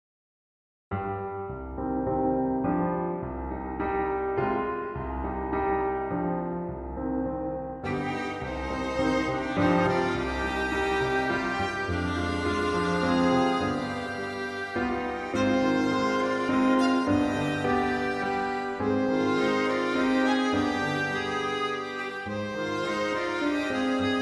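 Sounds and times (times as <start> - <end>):
piano in a trio: 0.9 - 24.2
violin in a trio: 7.8 - 24.2.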